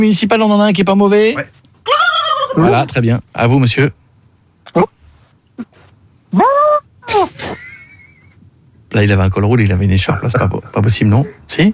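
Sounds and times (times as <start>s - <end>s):
speech: 0.0s - 4.0s, 4.7s - 5.0s, 6.3s - 7.6s, 8.9s - 11.7s
person imitating a turkey gobble with throaty clucks and warbling calls: 1.9s - 2.9s, 6.3s - 7.5s.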